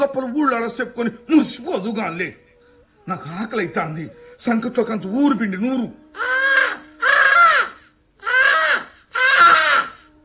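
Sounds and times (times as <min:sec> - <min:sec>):
speech: 0:00.0 - 0:02.4, 0:03.1 - 0:06.3
crow cawing: 0:06.2 - 0:10.0.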